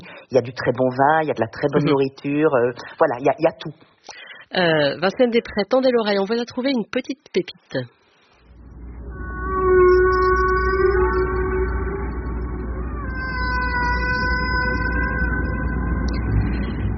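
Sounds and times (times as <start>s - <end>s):
speech: 0.3s - 8.0s
low underwater rumble: 8.5s - 16.9s
humpback whale song off Hawaii: 8.6s - 16.9s.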